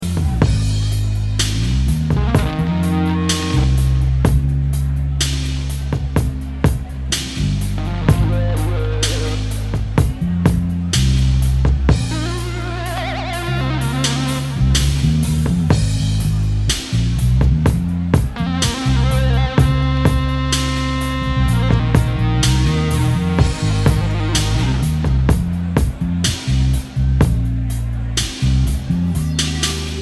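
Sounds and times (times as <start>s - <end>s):
antique brass jam: 0.0s - 29.9s.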